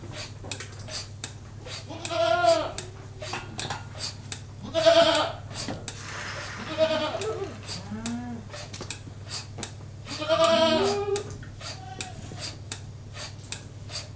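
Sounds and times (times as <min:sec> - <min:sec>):
goat bleating while being milked by machine: 0:01.9 - 0:02.8, 0:04.6 - 0:05.4, 0:06.6 - 0:08.5, 0:10.1 - 0:12.4.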